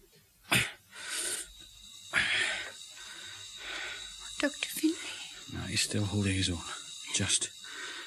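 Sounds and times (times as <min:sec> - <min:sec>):
labored wheezing breathing of sick patient receiving oxygen: 0:00.5 - 0:05.5, 0:06.6 - 0:08.0
speech: 0:04.4 - 0:04.7, 0:05.7 - 0:07.6.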